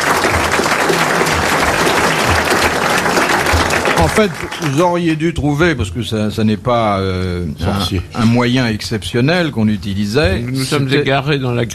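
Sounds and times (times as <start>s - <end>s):
studio audience applauding a contest winner: 0.0s - 5.2s
speech: 4.1s - 11.7s.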